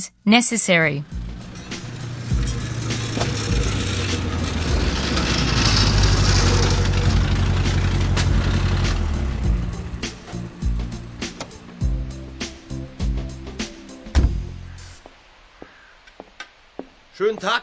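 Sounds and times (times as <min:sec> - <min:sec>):
speech: 0:00.0 - 0:01.2, 0:17.3 - 0:17.6
car with rough, rattly, broken exhaust rumbling and idling in a garage yard: 0:01.0 - 0:13.5
clunks and knocks: 0:01.2 - 0:11.8, 0:14.1 - 0:14.6.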